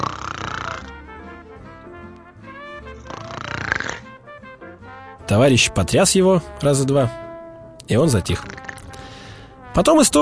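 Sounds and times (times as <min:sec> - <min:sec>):
man snoring while lying in tall weeds: 0:00.0 - 0:01.1, 0:02.8 - 0:04.2, 0:08.3 - 0:09.2
speech: 0:05.3 - 0:07.2, 0:07.9 - 0:08.6, 0:09.8 - 0:10.1.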